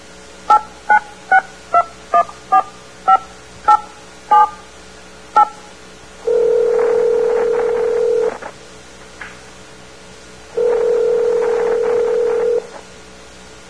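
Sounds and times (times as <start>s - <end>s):
touch-tone beeps of telephone number dialing: 0.5s - 4.6s
steady continuous telephone dial tone: 6.2s - 8.4s, 10.6s - 12.8s.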